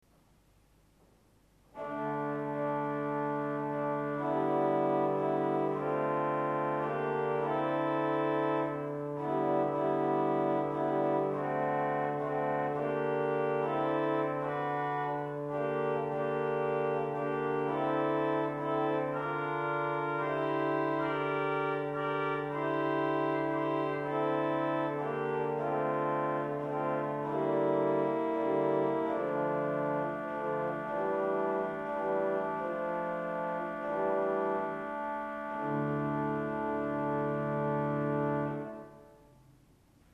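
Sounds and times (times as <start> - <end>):
Gambe 8 organ stop: 1.7 - 39.0.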